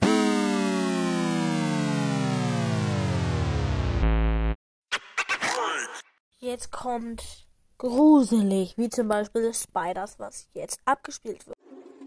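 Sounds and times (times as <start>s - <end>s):
loud electronic startle tone sweeping downward: 0.0s - 5.7s
speech: 6.4s - 11.9s.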